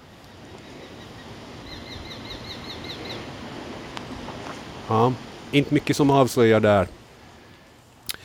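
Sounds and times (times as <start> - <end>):
Eurasian sparrowhawk calling: 0.6 - 3.3
speech: 4.9 - 7.0.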